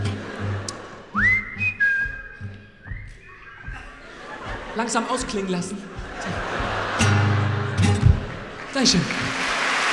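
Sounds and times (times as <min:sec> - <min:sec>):
laughter: 0:00.0 - 0:01.2, 0:03.2 - 0:09.6
audience whistling a slow melody together: 0:01.1 - 0:04.1
steady thumping low accompaniment: 0:01.2 - 0:07.3
speech: 0:04.8 - 0:06.0, 0:08.8 - 0:09.2.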